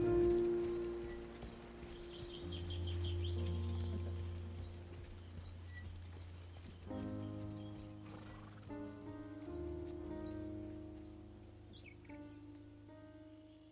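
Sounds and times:
faint rhythmic ticks: 0.0 - 13.3
ridden horse hooves clip-clopping at a walking pace: 0.0 - 13.3.

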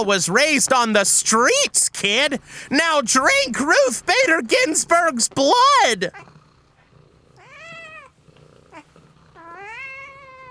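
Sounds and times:
speech: 0.0 - 6.3
cat wailing meows: 7.4 - 8.1, 9.4 - 10.4.

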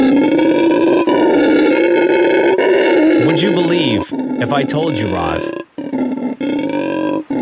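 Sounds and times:
monkey roaring call: 0.0 - 7.4
speech: 3.4 - 5.6.

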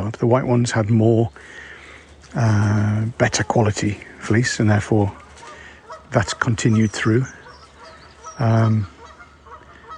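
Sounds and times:
outdoor background: 0.0 - 9.9
speech: 0.1 - 1.7, 2.3 - 5.2, 6.1 - 7.4, 8.4 - 8.9
goose honking: 3.2 - 9.9.

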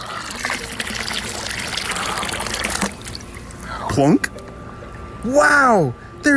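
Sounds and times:
bucket of water poured into an empty dry pond: 0.0 - 3.5
speech: 4.0 - 4.3, 5.2 - 6.3.

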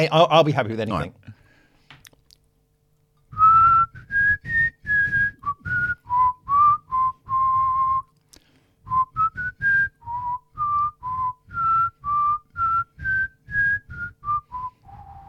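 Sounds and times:
speech: 0.0 - 1.2
person whistling a tune: 3.3 - 8.1, 8.9 - 15.2.

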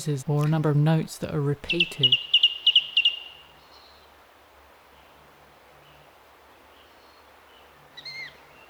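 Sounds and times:
speech: 0.0 - 2.4
song thrush singing repeated phrases: 0.0 - 4.1, 6.6 - 8.6
soft outdoor hiss: 0.0 - 8.6.

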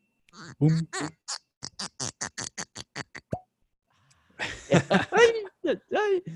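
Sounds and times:
cork squeaking and twisting in a mezcal bottle: 0.3 - 3.5
speech: 0.5 - 1.2
cork popping out of a mezcal bottle: 3.3 - 3.5
people laughing: 4.4 - 5.7.

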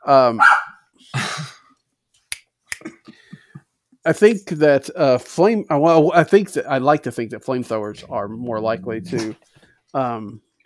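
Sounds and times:
speech: 0.0 - 1.5, 4.0 - 10.5
dog barking: 0.4 - 0.8.

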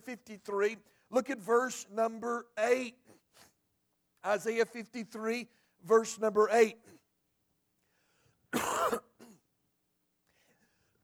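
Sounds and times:
speech: 0.1 - 3.5, 4.2 - 7.0, 8.5 - 9.1
person clearing throat: 8.6 - 9.4.

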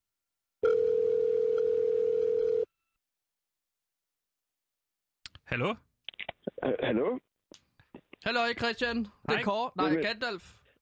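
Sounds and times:
telephone ringing tone while placing call: 0.6 - 2.8
speech: 5.5 - 5.9, 6.6 - 7.3, 8.2 - 10.7.

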